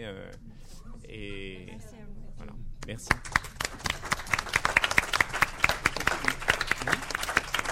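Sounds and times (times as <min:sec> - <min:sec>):
speech: 0:00.0 - 0:03.5
small crowd clapping: 0:03.1 - 0:07.7.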